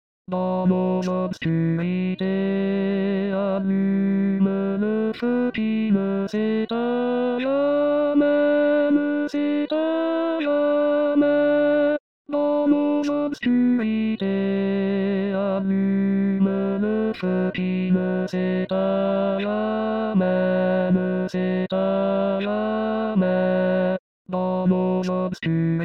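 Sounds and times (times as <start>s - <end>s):
tenor voice singing in SATB choir: 0.3s - 25.8s.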